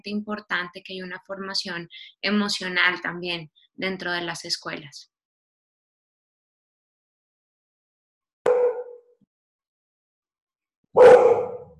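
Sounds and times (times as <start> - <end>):
speech: 0.0 - 5.1
dog barking: 8.5 - 9.0, 11.0 - 11.7.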